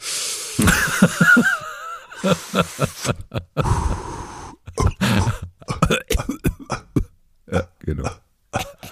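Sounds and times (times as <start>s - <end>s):
speech: 0.6s - 1.6s, 2.2s - 3.9s
laughter: 0.6s - 3.6s
person coughing: 4.7s - 8.9s.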